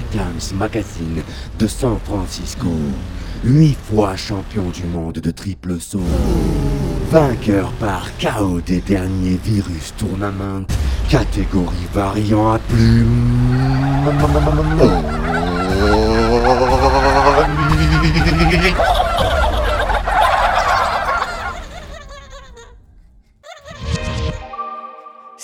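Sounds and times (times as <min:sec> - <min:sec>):
speech: 0:00.1 - 0:16.0, 0:17.4 - 0:18.9
laughter: 0:06.2 - 0:08.6, 0:12.8 - 0:22.8, 0:23.4 - 0:24.2
turkey gobbling: 0:13.5 - 0:22.2.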